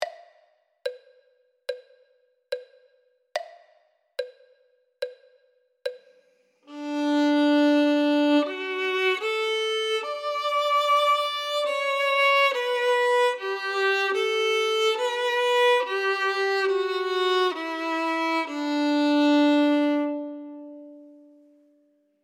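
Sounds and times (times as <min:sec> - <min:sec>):
violin: 0:06.7 - 0:21.6.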